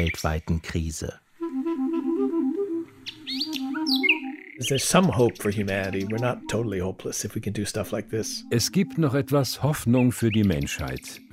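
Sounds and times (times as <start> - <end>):
speech: 0.0 - 1.2, 4.6 - 11.3
sustained clarinet melody: 1.4 - 10.4
nightingale singing quick rising chirps and whistles: 3.0 - 11.3.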